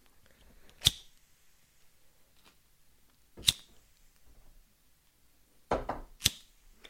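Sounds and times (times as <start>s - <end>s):
lighter flicked to light Christmas candles: 0.8s - 1.2s, 6.2s - 6.5s.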